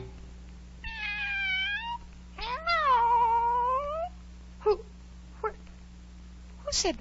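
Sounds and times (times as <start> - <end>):
cat meowing: 0.8 - 4.1
cat chirps: 0.8 - 4.8.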